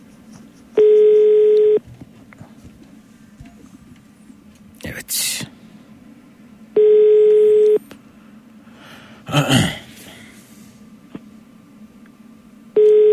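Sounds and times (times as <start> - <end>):
telephone ringback tone while calling someone: 0.8 - 1.8, 6.8 - 7.8, 12.8 - 13.1.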